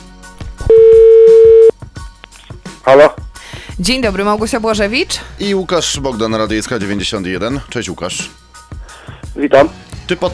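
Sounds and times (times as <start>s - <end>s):
faint rhythmic background: 0.0s - 10.3s
telephone tone as a call is placed: 0.7s - 1.7s
speech: 2.9s - 3.2s, 3.8s - 8.4s, 9.4s - 10.3s.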